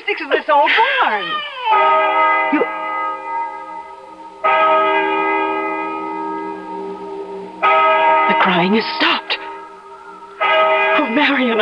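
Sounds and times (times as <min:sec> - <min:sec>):
speech: 0:00.1 - 0:02.8, 0:08.6 - 0:09.2, 0:11.1 - 0:11.5
large bell tolling the hour: 0:01.7 - 0:11.5.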